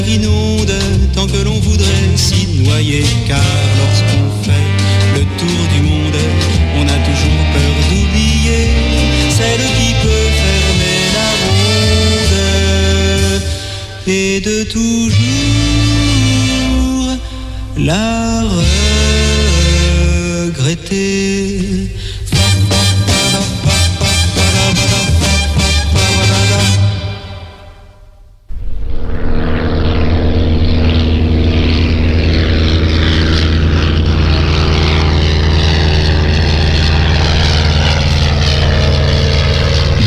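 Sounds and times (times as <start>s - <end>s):
music: 0.0s - 14.1s, 15.1s - 17.1s, 18.6s - 20.2s, 22.3s - 28.0s
propeller airplane roar coming in to land: 0.0s - 40.0s
speech: 0.1s - 4.1s, 14.6s - 15.3s, 17.9s - 18.6s.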